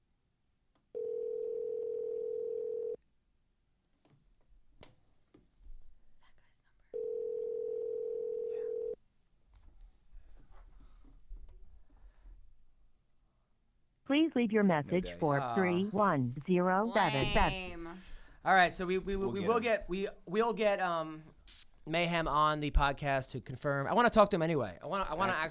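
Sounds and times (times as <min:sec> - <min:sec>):
telephone ringback tones of an outgoing call: 0:01.0 - 0:03.0, 0:07.0 - 0:09.0
speech: 0:14.1 - 0:25.4.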